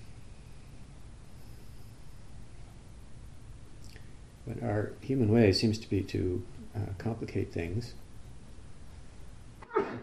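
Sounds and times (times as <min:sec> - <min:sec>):
faint hissy background: 0:00.0 - 0:10.0
speech: 0:04.5 - 0:08.0
sneeze: 0:09.6 - 0:10.0.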